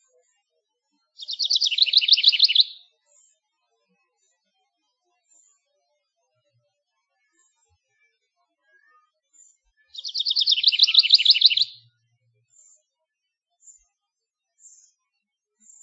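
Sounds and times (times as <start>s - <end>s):
house wren singing in search of a mate: 1.2s - 2.8s, 10.0s - 11.8s
faint bird chirps: 1.2s - 3.3s, 9.4s - 11.9s.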